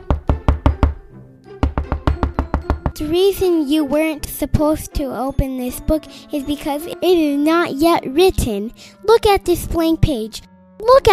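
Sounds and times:
firm knocking on a door: 0.0s - 1.0s, 1.6s - 3.0s
speech: 3.0s - 11.1s.

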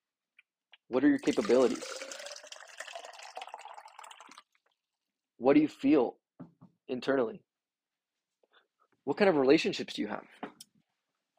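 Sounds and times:
speech: 0.9s - 2.2s, 5.4s - 7.5s, 9.0s - 10.6s
water poured to drink in a splashy stream: 1.1s - 4.6s.

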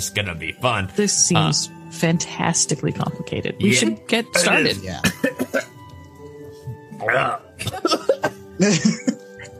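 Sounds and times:
speech: 0.0s - 5.7s, 7.0s - 8.0s, 8.6s - 9.2s
person coughing: 3.7s - 5.8s, 7.0s - 9.2s
laughter: 7.6s - 9.4s.

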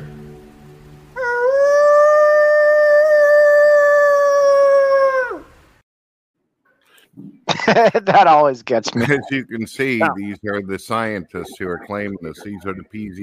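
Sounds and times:
person imitating a wolf howl: 1.2s - 5.6s
laughter: 7.5s - 13.2s
speech: 7.7s - 13.2s.

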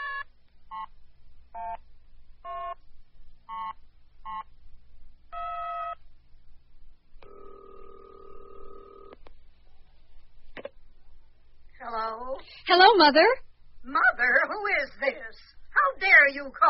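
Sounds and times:
steady buzzing telephone ring tone on the line: 2.4s - 2.8s, 5.3s - 6.0s, 7.2s - 9.2s
telephone keypad tones as a number is dialed on a newly installed phone: 7.2s - 9.2s
speech: 13.0s - 16.6s.

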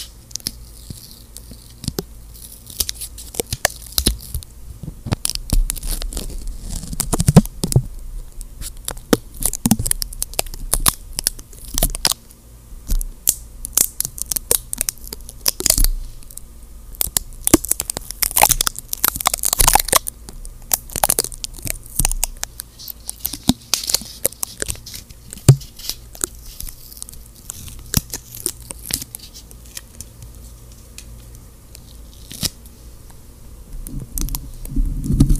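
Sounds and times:
stickers, tape and gloves crinkling and peeling: 0.0s - 7.9s, 8.5s - 32.7s, 33.8s - 35.3s
faint low hum: 0.0s - 35.3s.

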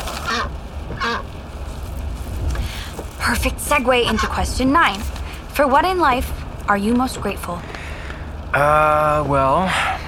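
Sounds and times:
duck quacking in the back seat of a car: 0.2s - 1.2s
speech: 3.3s - 7.7s, 8.5s - 9.9s.

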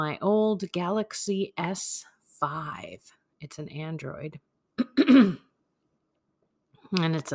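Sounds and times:
speech: 0.0s - 5.4s, 6.9s - 7.3s
throat clearing: 4.8s - 5.5s.

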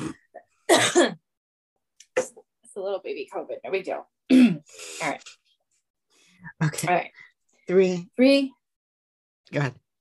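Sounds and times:
harsh throaty coughs: 0.0s - 1.2s
speech: 2.8s - 5.4s, 6.4s - 8.6s, 9.5s - 9.8s
person clearing throat with a short rasp: 4.3s - 4.7s.

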